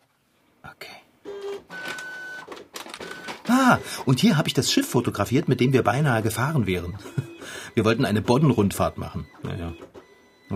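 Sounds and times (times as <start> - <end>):
printer printing a holiday photo: 1.2 - 10.5
speech: 3.6 - 9.9
laughter: 7.0 - 7.8.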